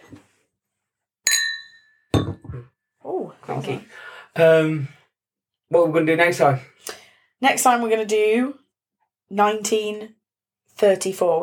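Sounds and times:
empty glass clinking: 0:01.3 - 0:02.6
speech: 0:03.6 - 0:05.0, 0:05.7 - 0:08.6, 0:09.3 - 0:10.2, 0:10.8 - 0:11.4.

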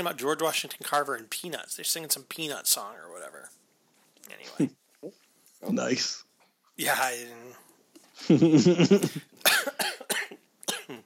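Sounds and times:
speech: 0:00.0 - 0:03.6, 0:04.2 - 0:06.2, 0:06.8 - 0:07.6, 0:08.2 - 0:10.0
coughing from candy stuck in the throat: 0:08.8 - 0:11.0
throat clearing from candy stuck in the throat: 0:09.5 - 0:11.0.

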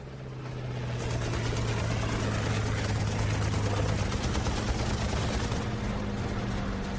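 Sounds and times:
aircraft engine droning roar: 0:00.0 - 0:06.9
rapid rattling aircraft machine-gun fire: 0:01.0 - 0:05.8.

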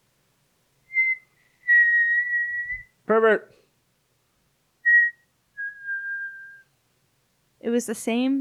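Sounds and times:
clear thin whistled tones: 0:00.9 - 0:03.0, 0:04.8 - 0:06.7
speech: 0:03.1 - 0:03.6, 0:07.8 - 0:08.3.

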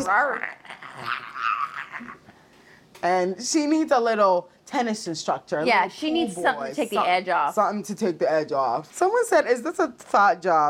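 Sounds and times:
speech: 0:00.0 - 0:01.4, 0:03.0 - 0:10.6
person imitating a cougar growl: 0:00.0 - 0:02.3.

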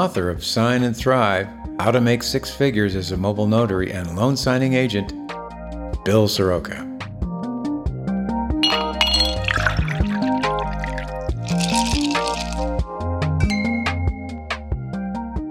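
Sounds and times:
speech: 0:00.0 - 0:05.2, 0:06.0 - 0:06.9
steady music: 0:00.0 - 0:15.4
glasses clinking in a toast: 0:08.6 - 0:12.6.

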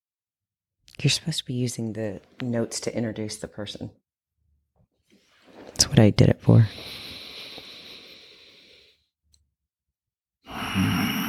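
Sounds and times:
speech: 0:01.0 - 0:04.0, 0:05.9 - 0:07.0
loud forceful breathing: 0:06.7 - 0:09.1, 0:10.5 - 0:11.2.

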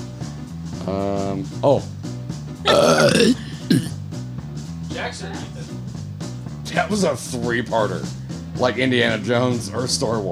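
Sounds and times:
speech: 0:00.9 - 0:02.0, 0:02.6 - 0:03.9, 0:05.0 - 0:05.9, 0:06.7 - 0:10.3
close-miked burps against the microphone: 0:02.7 - 0:04.0.

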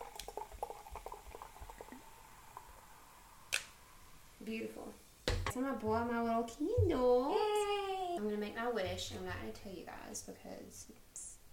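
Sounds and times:
fizzing of carbonated bubbles in a drink: 0:00.0 - 0:03.9
speech: 0:04.5 - 0:07.6, 0:08.2 - 0:11.1.

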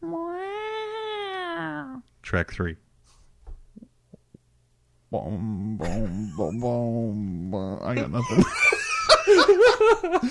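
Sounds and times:
person imitating a cat meowing: 0:00.0 - 0:02.1
speech: 0:02.3 - 0:02.8, 0:05.1 - 0:08.6, 0:09.9 - 0:10.3
laughter: 0:08.0 - 0:10.3.

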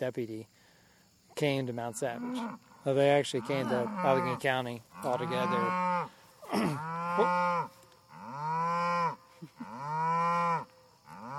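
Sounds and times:
speech: 0:00.0 - 0:00.6, 0:01.4 - 0:07.8
cattle mooing: 0:02.1 - 0:02.6, 0:03.3 - 0:11.3.

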